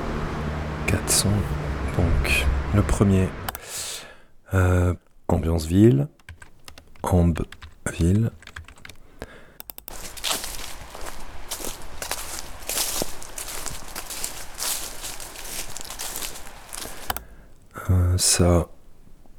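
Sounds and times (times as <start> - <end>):
faint hiss: 0.0 - 19.3
speech: 0.9 - 3.8, 4.5 - 6.2, 7.0 - 8.4, 18.2 - 18.8
footsteps walking through grass: 9.9 - 17.1.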